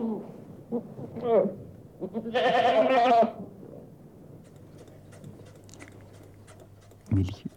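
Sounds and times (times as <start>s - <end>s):
speech: 0.2s - 3.4s, 7.2s - 7.5s
goat bleating: 2.0s - 3.4s.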